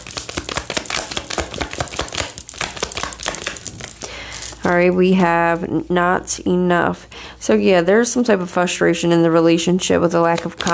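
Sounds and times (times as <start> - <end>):
tarot cards drawn and handled from the deck: 0.0 - 4.7, 10.2 - 10.7
speech: 4.7 - 10.7.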